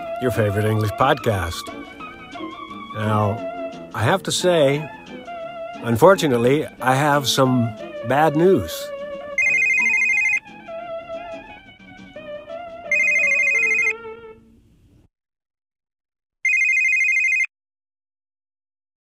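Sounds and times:
speech: 0.2 - 2.0, 3.0 - 5.1, 5.8 - 8.9
melodic electronic tones: 9.3 - 11.5, 12.9 - 14.0
mobile phone ringtone: 9.4 - 10.5, 12.9 - 14.0, 16.4 - 17.5.

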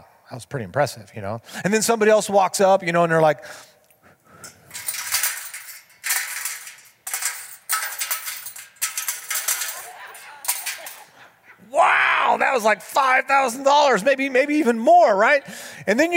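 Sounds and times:
speech: 0.3 - 3.8, 12.6 - 16.1
large coins clattering into a container: 4.7 - 11.1.

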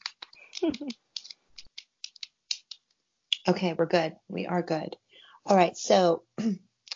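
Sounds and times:
deck of tarot cards being shuffled: 0.0 - 3.0
speech: 0.6 - 1.0, 3.5 - 6.7.

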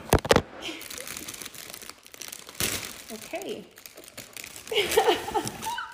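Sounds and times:
plastic chocolate wrapper packaging rustling and crackling: 0.0 - 5.9
plastic chocolate wrapper torn open with teeth: 0.0 - 5.9
speech: 3.3 - 3.8, 4.7 - 5.7.

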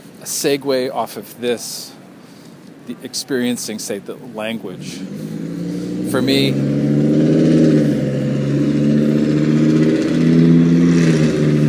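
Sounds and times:
speech: 0.2 - 2.0, 2.9 - 5.4, 6.1 - 7.0
loud car engine with no muffler revving: 4.6 - 11.6.

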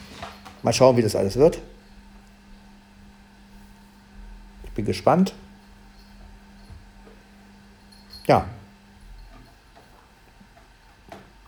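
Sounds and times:
washing machine clunk: 0.0 - 1.1
washing machine humming: 0.0 - 11.4
speech: 0.2 - 1.8, 4.8 - 5.4, 8.3 - 8.6.

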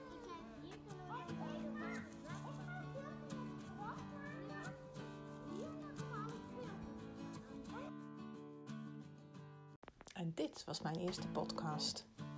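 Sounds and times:
children shouting and chattering at play outdoors in a city: 0.0 - 7.9
speech: 10.2 - 12.1.

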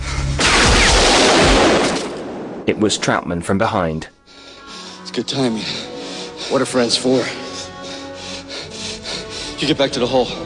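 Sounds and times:
gunshot echoing in a cave: 0.4 - 3.0
speech: 2.7 - 4.2, 5.2 - 5.9, 6.5 - 7.4, 9.6 - 10.4.

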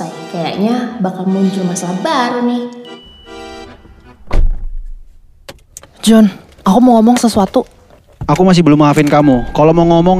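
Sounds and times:
speech: 0.3 - 2.9, 6.1 - 10.1
car door shutting with a solid thunk: 3.6 - 6.0.

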